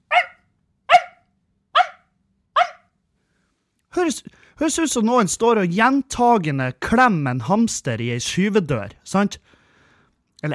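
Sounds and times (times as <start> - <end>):
small dog yapping shrilly: 0.0 - 1.2, 1.8 - 2.9
speech: 3.9 - 9.6.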